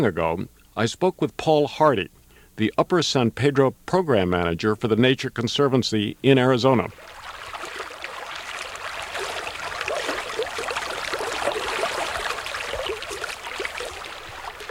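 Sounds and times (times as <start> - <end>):
speech: 0.0 - 7.1
river water flowing on a riverbank: 6.9 - 14.6.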